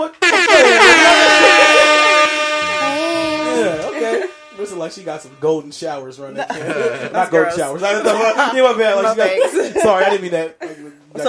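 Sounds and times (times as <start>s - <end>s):
air horn tooted in blaring harmonic blasts: 0.0s - 5.5s
laughter: 0.4s - 4.5s, 6.4s - 11.0s
speech: 4.7s - 11.2s.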